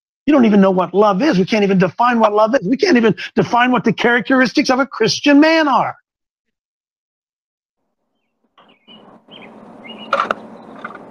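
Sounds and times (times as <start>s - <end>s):
speech: 0.3s - 6.0s
bird chirping: 8.1s - 11.0s.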